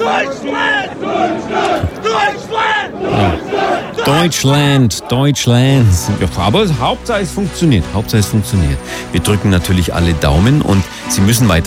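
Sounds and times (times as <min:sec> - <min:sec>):
crowd cheering and chanting at an American sports event: 0:00.0 - 0:08.1
speech: 0:00.2 - 0:11.6.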